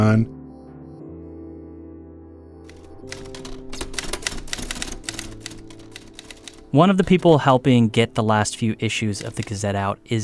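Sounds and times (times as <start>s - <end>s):
speech: 0.0s - 0.4s, 6.7s - 10.2s
typewriter keys clacking: 2.7s - 9.8s.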